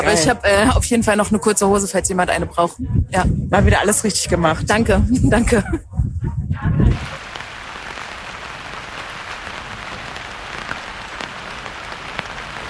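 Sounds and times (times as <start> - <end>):
speech: 0.0 - 7.1
steady rain pattering across a surface: 6.9 - 12.6.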